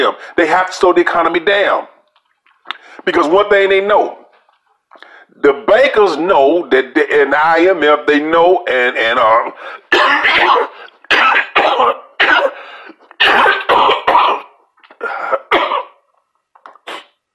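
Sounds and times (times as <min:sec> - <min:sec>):
speech: 0:00.0 - 0:01.9, 0:03.0 - 0:04.2, 0:04.9 - 0:10.7, 0:11.6 - 0:12.0
harsh coughing fit with loud rough coughs: 0:09.5 - 0:16.0.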